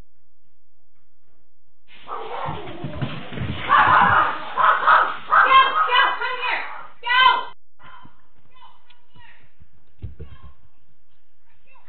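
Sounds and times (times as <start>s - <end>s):
dog barking and whimpering played back from a phone video: 2.1s - 2.7s, 3.7s - 7.0s.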